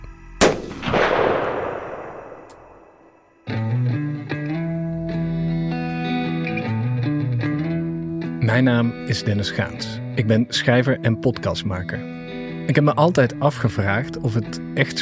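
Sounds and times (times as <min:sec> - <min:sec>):
loud sniper rifle shot: 0:00.4 - 0:03.1
sustained music: 0:03.3 - 0:15.0
speech: 0:08.5 - 0:15.0.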